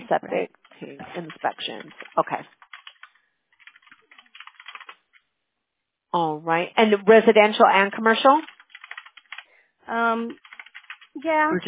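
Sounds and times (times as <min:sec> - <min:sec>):
speech: 0:00.1 - 0:02.6, 0:06.1 - 0:08.5, 0:09.9 - 0:10.5, 0:11.2 - 0:11.6
typing on a computer keyboard: 0:00.6 - 0:05.2, 0:08.4 - 0:09.5, 0:10.3 - 0:11.2.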